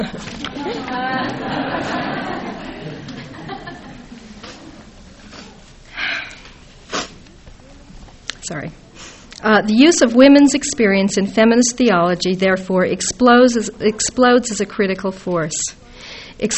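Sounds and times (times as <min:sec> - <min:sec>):
speech: 0:00.0 - 0:01.6, 0:08.5 - 0:08.8, 0:09.4 - 0:15.8, 0:16.4 - 0:16.5
light chuckling: 0:00.0 - 0:05.6
soft murmuring voices: 0:00.0 - 0:09.1
nose sniffs by a lecturer: 0:05.2 - 0:07.2, 0:09.0 - 0:09.4.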